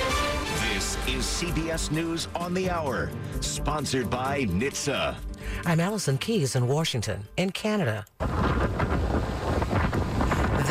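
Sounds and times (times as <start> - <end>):
speech: 1.1 - 8.9
strong wind whipping during tropical storm: 8.2 - 10.7.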